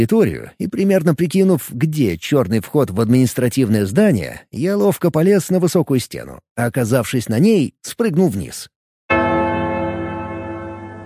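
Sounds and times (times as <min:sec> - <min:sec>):
speech: 0:00.0 - 0:08.8
loud bell striking: 0:09.1 - 0:11.0.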